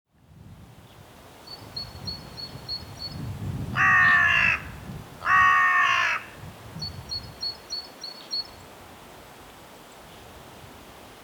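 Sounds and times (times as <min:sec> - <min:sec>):
Carrion crow giving harsh hoarse caws: 0:03.8 - 0:06.3.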